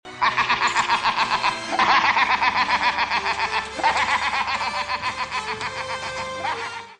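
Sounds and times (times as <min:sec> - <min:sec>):
scarecrow laugh: 0:00.2 - 0:06.9.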